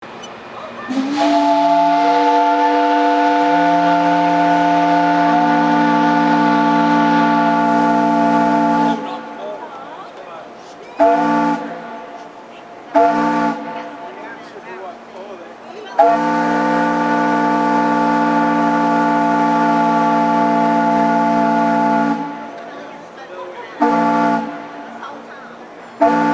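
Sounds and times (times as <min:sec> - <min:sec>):
steam whistle: 0:00.9 - 0:09.2, 0:11.0 - 0:12.0, 0:12.9 - 0:13.8, 0:16.0 - 0:22.6, 0:23.8 - 0:24.7, 0:26.0 - 0:26.3.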